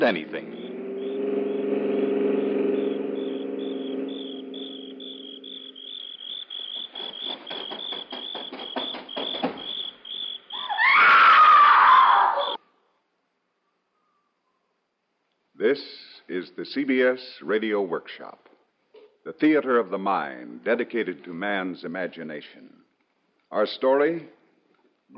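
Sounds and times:
speech: 0:00.0 - 0:00.6, 0:15.7 - 0:16.0, 0:16.6 - 0:18.5, 0:19.3 - 0:22.7, 0:23.5 - 0:24.4
low hum: 0:00.0 - 0:07.2
car driving along a road: 0:00.0 - 0:08.6
crickets chirping: 0:00.0 - 0:11.4
woman screaming with a falling pitch: 0:10.6 - 0:12.6.

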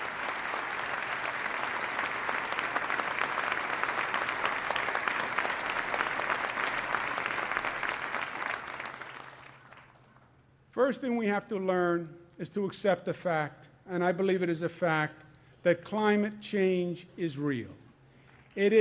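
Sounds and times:
audience applauding: 0:00.0 - 0:10.2
speech: 0:10.8 - 0:17.8, 0:18.6 - 0:18.8.

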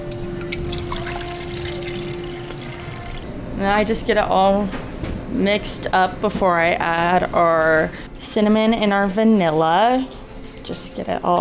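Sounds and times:
water pouring into a bowl of waffle mix: 0:00.0 - 0:03.2
speech: 0:03.6 - 0:11.4.

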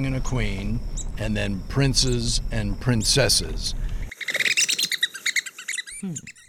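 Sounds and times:
speech: 0:00.0 - 0:03.9, 0:06.0 - 0:06.4
descending red-cockaded woodpecker chirp: 0:04.1 - 0:06.4
red-cockaded woodpeckers chattering: 0:04.1 - 0:06.4.

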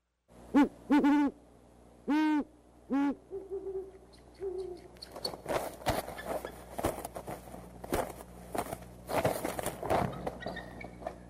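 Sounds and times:
male owl hooting in its nest: 0:00.5 - 0:01.4, 0:02.0 - 0:05.2
rustling and scuffling commotion in the nest: 0:05.0 - 0:11.2.

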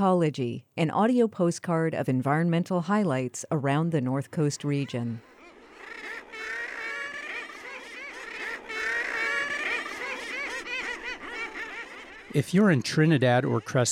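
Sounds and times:
speech: 0:00.0 - 0:05.4, 0:12.4 - 0:13.9
Common Murre nesting colony chorus on California North Coast rocks: 0:04.3 - 0:13.9.

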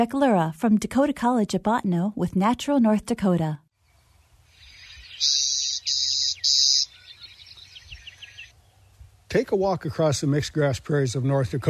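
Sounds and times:
speech: 0:00.0 - 0:03.6, 0:09.3 - 0:11.6
clay-colored sparrow buzzy song in western snowberry shrubs on mixed-grass prairie: 0:03.8 - 0:09.2
softer fainter bird chirping: 0:03.8 - 0:09.2.

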